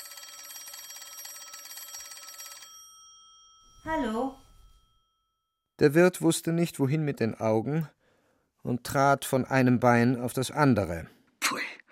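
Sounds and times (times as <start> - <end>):
telephone bell ringing in a hallway: 0.0 - 5.6
speech: 3.8 - 4.4, 5.8 - 8.0, 8.6 - 11.6.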